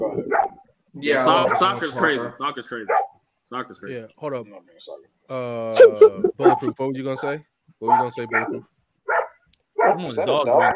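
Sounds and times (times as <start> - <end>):
speech: 0.0 - 0.4, 1.0 - 8.7, 10.0 - 10.7
dog barking excitedly with high wavering barks and yips: 0.2 - 0.6, 1.3 - 1.8, 2.9 - 3.2, 5.8 - 7.3, 7.9 - 10.7.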